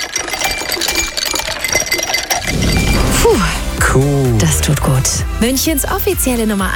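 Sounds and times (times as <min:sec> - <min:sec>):
ice cubes clinking and rattling: 0:00.0 - 0:03.8
speech: 0:04.0 - 0:06.7.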